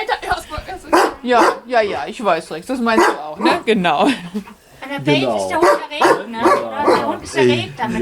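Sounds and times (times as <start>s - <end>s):
dog yowling barks at strangers outside its room: 0.9s - 1.8s, 2.9s - 3.7s, 5.6s - 7.2s
speech: 1.2s - 8.0s.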